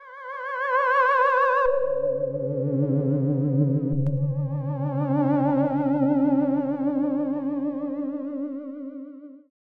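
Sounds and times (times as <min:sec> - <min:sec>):
tormented ghost atmosphere: 0:01.4 - 0:09.0.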